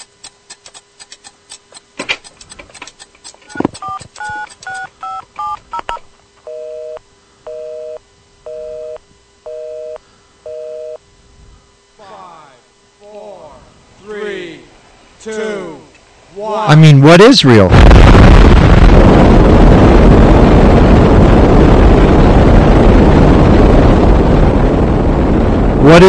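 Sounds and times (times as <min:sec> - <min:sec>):
telephone touch-tone dialing beeps: 0:03.5 - 0:11.0
speech: 0:16.7 - 0:18.5, 0:25.9 - 0:26.0
loud steady rocket or airplane roar: 0:17.6 - 0:26.0.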